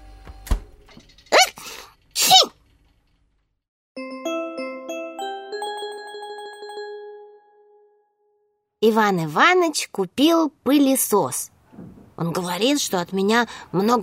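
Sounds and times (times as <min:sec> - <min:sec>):
dog sneezing: 0:01.4 - 0:02.6
speech: 0:08.8 - 0:11.5, 0:12.2 - 0:14.0.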